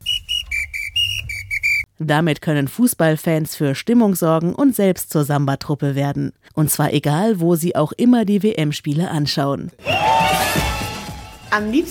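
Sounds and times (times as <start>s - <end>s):
shrill whistle on a black-red-gold 4-in-1 World Cup fan instrument: 0.0s - 1.9s
speech: 2.0s - 10.7s, 11.5s - 11.9s.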